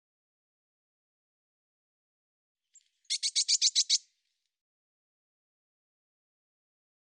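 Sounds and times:
Eurasian blue tit churring: 3.1 - 4.0.

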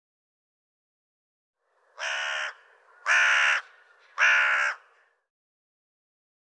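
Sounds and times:
bird cawing: 1.7 - 5.3.

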